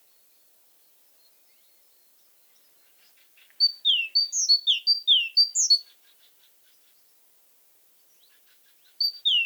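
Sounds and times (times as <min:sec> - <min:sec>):
great tit singing paired whistled notes: 0:02.6 - 0:06.8, 0:08.1 - 0:09.4.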